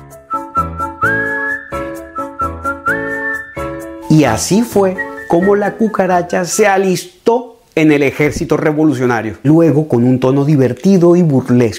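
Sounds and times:
whistled simple playful tune: 0:00.0 - 0:06.5
bouncy steady rhythmic backing with regular beats: 0:00.0 - 0:06.6
speech: 0:04.1 - 0:11.7.

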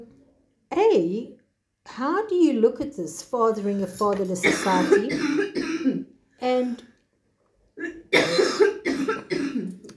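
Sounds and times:
speech: 0:01.0 - 0:05.7, 0:06.4 - 0:06.9
harsh chesty coughs from a person with a cold: 0:04.4 - 0:06.1, 0:07.8 - 0:09.8.

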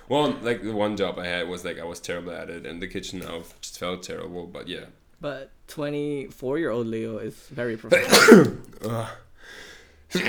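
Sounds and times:
speech: 0:00.1 - 0:10.2
person sneezing: 0:07.9 - 0:09.1.

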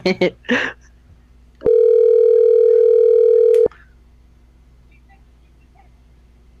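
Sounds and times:
loud steady telephone dial tone: 0:01.6 - 0:03.7.

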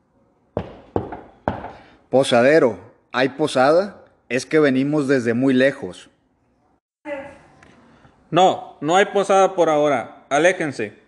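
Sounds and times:
knocking on a wooden door: 0:00.6 - 0:01.8
speech: 0:02.1 - 0:06.1, 0:08.3 - 0:11.0.

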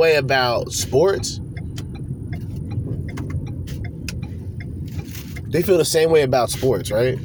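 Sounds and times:
speech: 0:00.0 - 0:01.4, 0:05.5 - 0:07.2
car engine and road noise driving the wrong way down a one-way street: 0:00.0 - 0:07.2
sharp light ticks: 0:00.8 - 0:05.5.

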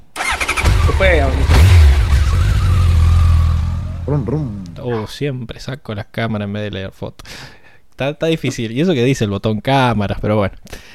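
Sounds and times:
motorcycle engine revving and pulling away: 0:00.2 - 0:04.8
speech: 0:01.0 - 0:01.7, 0:04.1 - 0:10.9.

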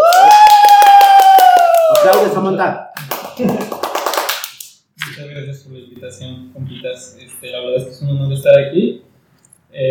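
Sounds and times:
long high-pitched cheering voice: 0:00.0 - 0:02.4
brief lively applause from a few people: 0:00.0 - 0:05.2
speech: 0:02.4 - 0:03.8, 0:05.3 - 0:09.1.

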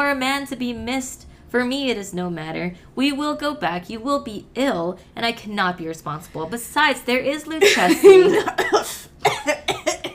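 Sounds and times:
speech: 0:00.0 - 0:09.8
person coughing: 0:07.6 - 0:10.1.

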